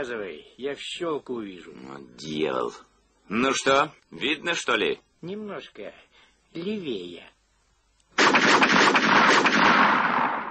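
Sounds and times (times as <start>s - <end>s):
speech: 0.0s - 7.3s
pistol gunshots in rapid succession: 8.2s - 10.4s.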